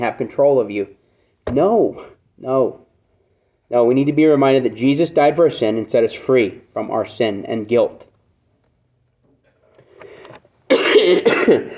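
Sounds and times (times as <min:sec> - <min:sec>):
speech: 0:00.0 - 0:02.8, 0:03.7 - 0:08.1, 0:11.1 - 0:11.7
loud harsh cough: 0:10.7 - 0:11.7
soft rasping throat clearing: 0:10.7 - 0:11.7.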